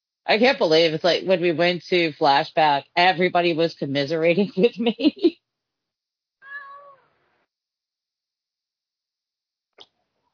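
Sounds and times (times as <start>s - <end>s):
speech: 0.3s - 5.4s
cat meowing from inside a closet: 6.4s - 7.1s.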